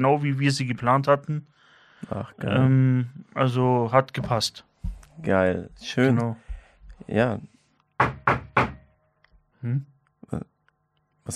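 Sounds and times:
speech: 0.0 - 6.4, 7.0 - 8.2, 9.6 - 10.5
firm knocking on a door: 8.0 - 8.9.

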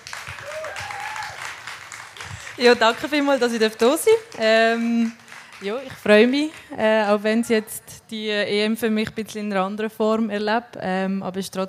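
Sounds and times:
live audience applause: 0.0 - 6.8
speech: 2.6 - 11.6.

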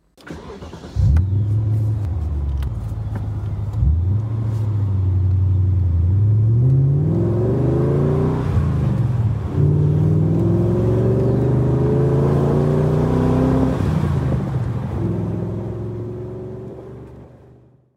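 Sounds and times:
BMW Z8 sports car engine revving: 0.6 - 17.1.

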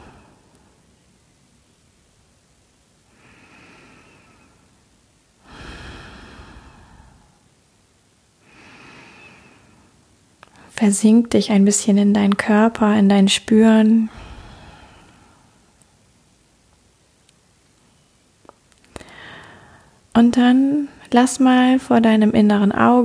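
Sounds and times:
slow deep breaths during a guided relaxation exercise: 0.0 - 0.9, 3.0 - 7.6, 8.4 - 10.7, 14.0 - 16.0, 18.9 - 20.1
speech: 10.8 - 14.2, 20.2 - 23.0.

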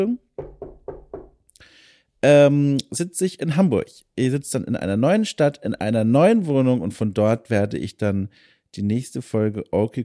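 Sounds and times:
speech: 0.0 - 0.2, 2.2 - 10.0
resonant knocks on wood: 0.4 - 1.4.

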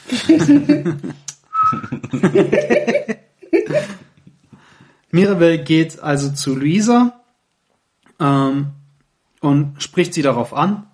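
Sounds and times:
people laughing: 0.0 - 4.1
speech: 0.2 - 1.2, 1.9 - 2.7, 5.2 - 7.2, 8.2 - 8.8, 9.4 - 10.9
steady single-pitch whistle: 1.5 - 1.9.

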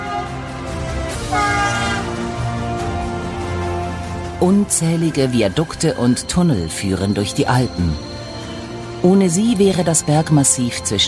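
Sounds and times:
train horn chord-like blare in Switzerland: 0.0 - 4.0
low rumble of a passing train in Switzerland: 0.0 - 11.0
speech: 4.4 - 8.1, 9.0 - 11.0.

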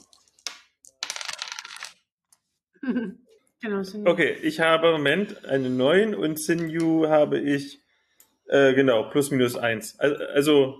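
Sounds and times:
dice rattling on a hard tabletop: 0.4 - 2.0
speech: 2.8 - 7.8, 8.5 - 10.7.

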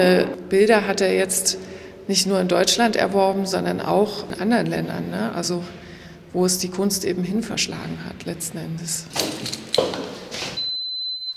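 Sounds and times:
speech: 0.0 - 10.0
shuffling noise: 10.1 - 10.6
security alarm system high-pitched electronic beep in an art exhibition building: 10.6 - 11.3.

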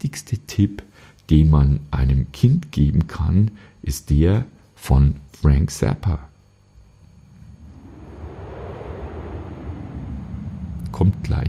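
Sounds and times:
speech: 0.1 - 6.3, 11.0 - 11.4
wind buffeting the microphone: 7.1 - 11.4.

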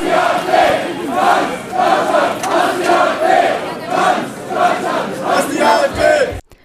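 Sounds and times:
large protest crowd chanting: 0.0 - 6.4.

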